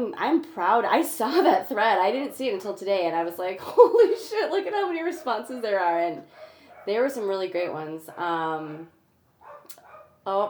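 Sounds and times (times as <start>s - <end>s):
speech: 0.0s - 9.0s, 9.7s - 10.4s
dog whining: 6.3s - 7.0s, 9.4s - 10.2s.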